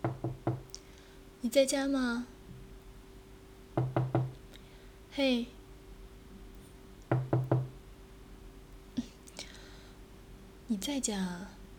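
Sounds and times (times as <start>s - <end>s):
firm knocking on a door: 0.0s - 0.7s, 3.8s - 4.4s, 7.1s - 7.8s
speech: 1.5s - 2.3s, 5.2s - 5.6s, 10.8s - 11.6s.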